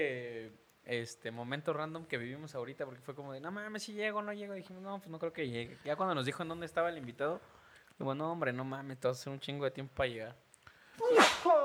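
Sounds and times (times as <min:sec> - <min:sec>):
speech: 0:00.0 - 0:00.3, 0:00.9 - 0:10.4, 0:11.0 - 0:11.6
loud sneeze: 0:11.0 - 0:11.6
person reacting vocally: 0:11.0 - 0:11.6.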